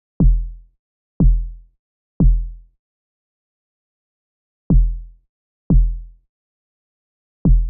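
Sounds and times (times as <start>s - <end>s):
breakbeat kick drum: 0.2s - 0.6s, 1.2s - 1.6s, 2.2s - 2.6s, 4.7s - 6.2s, 7.5s - 7.6s.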